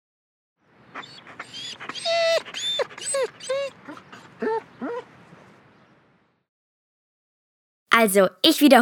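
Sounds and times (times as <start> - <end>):
dog whimpering with joy, whining and yelping: 1.0 - 5.6
speech: 8.0 - 8.8.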